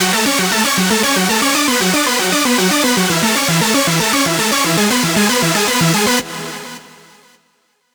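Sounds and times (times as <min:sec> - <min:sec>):
lead music loop in F sharp minor: 0:00.0 - 0:06.3.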